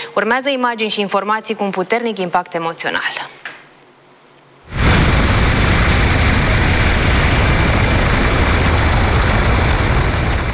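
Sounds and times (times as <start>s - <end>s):
speech: 0.2s - 3.5s
rescue helicopter engine and rotor roar: 5.3s - 10.5s.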